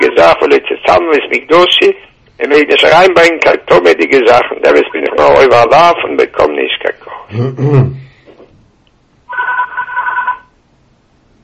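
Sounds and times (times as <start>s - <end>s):
speech: 0.5s - 8.1s
telephone ringing in a buzzing electronic burst: 9.3s - 10.6s.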